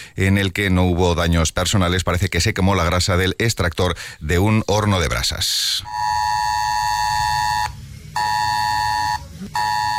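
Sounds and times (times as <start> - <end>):
speech: 0.2 - 6.2
loud harsh mobile phone emergency alert tone from an alert drill: 5.9 - 9.9.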